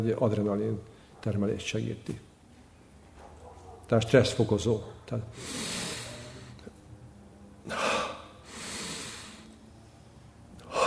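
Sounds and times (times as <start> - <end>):
speech: 0.0 - 2.3, 3.9 - 5.7
forceful breathing in a breathing exercise: 5.3 - 6.6, 7.7 - 9.6, 10.6 - 10.8.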